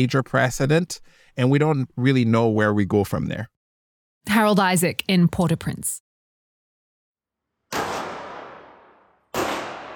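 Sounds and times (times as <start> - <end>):
speech: 0.0 - 3.5, 4.2 - 6.0
pistol shots at a shooting range in Santiago, Chile: 7.7 - 9.9.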